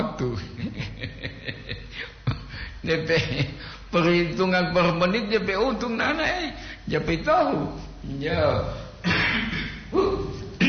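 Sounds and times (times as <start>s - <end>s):
speech: 2.9s - 8.8s
person coughing: 9.0s - 10.6s.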